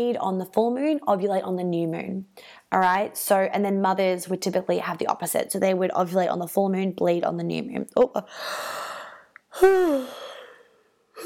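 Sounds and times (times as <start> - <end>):
speech: 0.0 - 8.9, 9.5 - 10.2
voiced breath: 8.3 - 11.0
drawn-out vocal yawn: 9.6 - 10.6.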